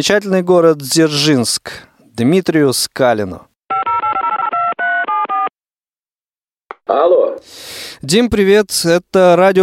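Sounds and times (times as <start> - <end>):
speech: 0.0 - 3.5, 6.9 - 9.6
touch-tone beeps of a phone number being dialed: 3.7 - 5.5.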